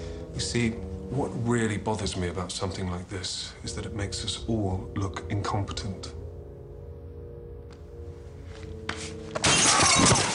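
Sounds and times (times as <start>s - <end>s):
low hum: 0.0s - 10.3s
speech: 0.4s - 6.2s
framed commendation glass smashing: 9.4s - 10.3s
glass shards scattering: 9.4s - 10.3s.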